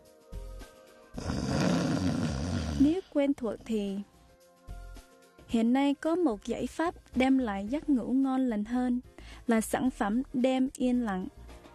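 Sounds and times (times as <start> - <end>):
person snoring: 1.2 - 3.1
speech: 2.8 - 4.1, 5.5 - 11.4.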